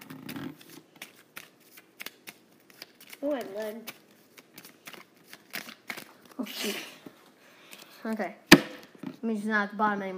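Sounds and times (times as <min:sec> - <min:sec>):
deck of cards being shuffled during a card game: 0:00.0 - 0:06.9
speech: 0:03.2 - 0:04.0, 0:06.6 - 0:06.9, 0:08.0 - 0:08.4, 0:09.2 - 0:10.1.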